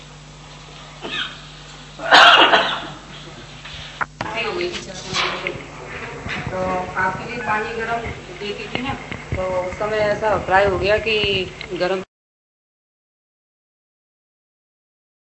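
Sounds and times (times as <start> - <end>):
low hum: 0.0 - 12.1
person coughing: 1.0 - 1.4, 2.0 - 3.1
voices talking: 2.1 - 12.1.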